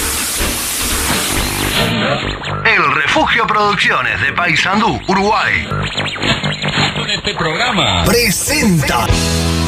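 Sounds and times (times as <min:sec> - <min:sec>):
coal-fired steam train starting to move under full power: 0:00.0 - 0:01.9
speech: 0:02.1 - 0:06.4, 0:07.1 - 0:09.5.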